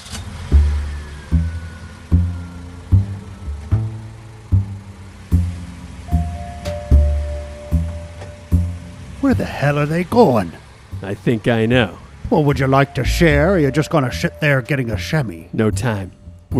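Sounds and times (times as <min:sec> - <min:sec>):
car engine revving and accelerating: 0:00.0 - 0:15.3
speech: 0:09.3 - 0:16.5.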